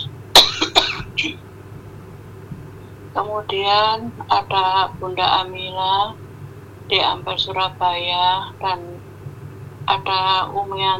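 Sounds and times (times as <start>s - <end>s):
quiet low hum: 0.0s - 10.9s
person clearing throat: 0.4s - 1.4s
person coughing: 0.4s - 1.4s
speech: 3.2s - 6.2s, 6.9s - 9.0s, 9.9s - 10.9s.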